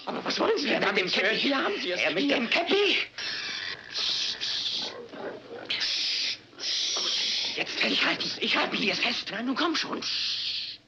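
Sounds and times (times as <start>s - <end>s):
speech: 0.3s - 3.4s, 7.6s - 10.4s
pig being held squealing: 3.2s - 8.2s.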